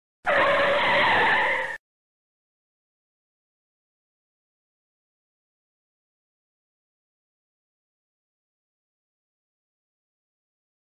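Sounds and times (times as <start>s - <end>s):
car braking in a drift: 0.3s - 1.8s.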